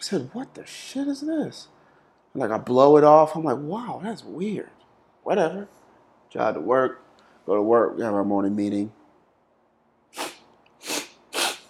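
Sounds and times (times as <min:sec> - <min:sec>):
speech: 0:00.0 - 0:09.0
person sneezing: 0:10.2 - 0:11.6.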